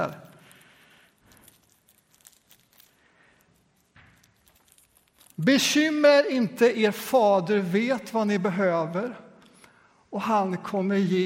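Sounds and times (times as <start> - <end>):
speech: 0.0 - 0.2, 5.4 - 9.2, 10.1 - 11.2
tape crinkling and rustling as it is handled: 0.0 - 5.5.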